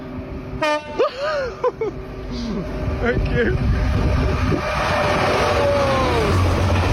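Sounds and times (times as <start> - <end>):
engineering train rumbling past on a railway: 0.0 - 6.9
engineering train two-tone horn blasts: 0.6 - 1.0
speech: 2.6 - 5.6.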